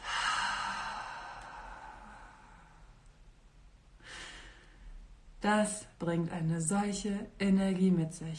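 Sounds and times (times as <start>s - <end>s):
deep exhale through the mouth after breath holding in a breathing exercise: 0.0s - 2.9s
soft breath: 0.0s - 3.1s, 4.0s - 5.0s
speech: 5.4s - 8.3s.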